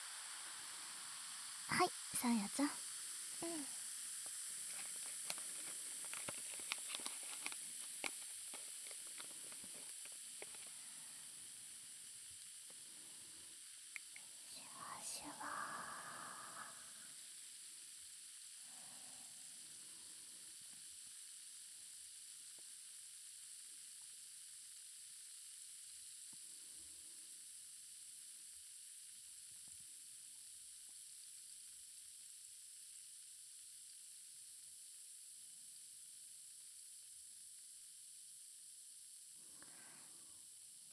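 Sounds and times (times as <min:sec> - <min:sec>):
fizzing hiss: 0:00.0 - 0:28.0
speech: 0:01.7 - 0:02.8, 0:03.4 - 0:03.8.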